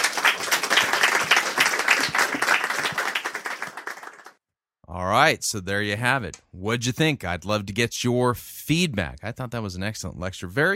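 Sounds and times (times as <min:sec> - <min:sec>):
audience applause: 0:00.0 - 0:04.4
speech: 0:05.0 - 0:10.7.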